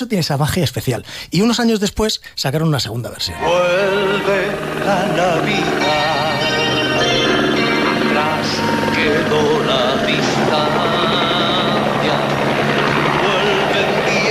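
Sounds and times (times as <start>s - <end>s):
speech: 0.0s - 6.2s
helicopter rotor noise: 3.3s - 14.3s.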